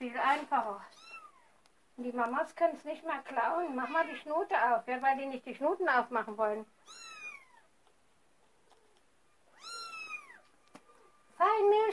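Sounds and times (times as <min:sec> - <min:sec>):
speech: 0:00.2 - 0:01.1, 0:02.0 - 0:07.0, 0:11.6 - 0:11.9
drawn-out cat meows: 0:06.8 - 0:07.7, 0:09.5 - 0:11.1.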